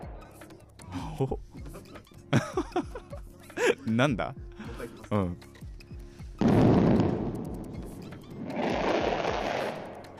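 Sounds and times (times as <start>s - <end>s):
laughter: 1.0s - 3.9s
speech: 1.2s - 1.5s, 3.9s - 4.4s, 5.1s - 5.5s
fireworks crackling: 6.4s - 10.1s.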